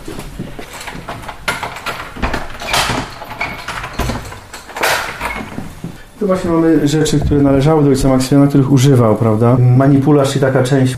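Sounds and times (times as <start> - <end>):
shuffling footsteps of visitors: 0.0 - 8.4
louder knocks or clunks as people move through: 0.6 - 6.0
side door into a former friar's cell opening: 0.6 - 8.3
speech: 6.2 - 10.9.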